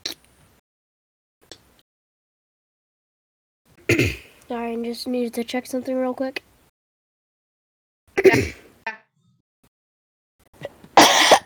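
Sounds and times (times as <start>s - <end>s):
person coughing: 3.9s - 4.3s, 8.2s - 8.6s, 11.0s - 11.4s
speech: 3.9s - 6.5s.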